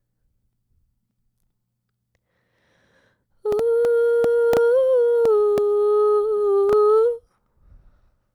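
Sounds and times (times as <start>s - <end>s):
vocal harmony: 3.4s - 7.2s.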